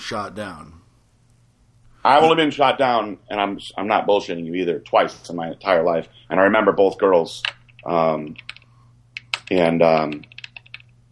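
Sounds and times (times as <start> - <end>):
speech: 0.1 - 0.8, 2.0 - 8.6, 9.5 - 10.3
typing on a computer keyboard: 7.4 - 10.9.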